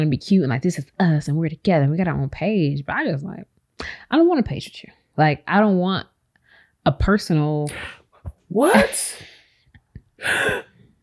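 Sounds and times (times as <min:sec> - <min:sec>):
speech: 0:00.0 - 0:06.1, 0:06.8 - 0:09.4, 0:10.2 - 0:10.7
person gasping: 0:08.6 - 0:09.5, 0:10.2 - 0:10.8.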